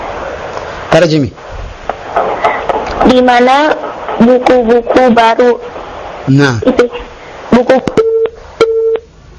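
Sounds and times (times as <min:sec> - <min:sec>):
speech: 0:00.9 - 0:01.4, 0:03.0 - 0:08.0
telephone busy tone after a call disconnects: 0:08.0 - 0:09.1.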